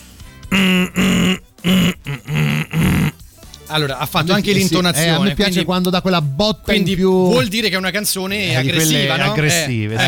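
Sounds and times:
person humming a tune with closed mouth: 0.5s - 3.2s
speech: 0.6s - 2.4s, 3.7s - 10.0s.

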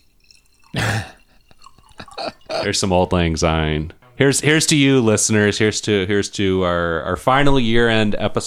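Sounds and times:
short splash of liquid pouring into a cup: 0.0s - 3.4s
speech: 2.2s - 8.4s.

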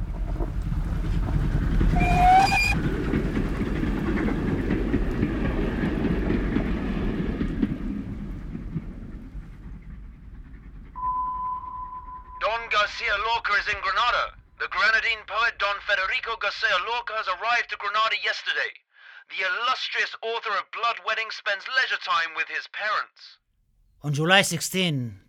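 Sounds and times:
night train to Granada rumbling along rails: 0.0s - 11.0s
train wheels squealing: 0.8s - 3.9s
speech: 13.2s - 23.4s, 24.0s - 25.2s.

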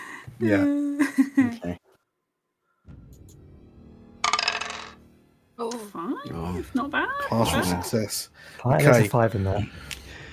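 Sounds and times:
speech: 0.4s - 1.8s, 5.6s - 10.0s
dice tumbling across a table during a game: 4.2s - 5.0s.

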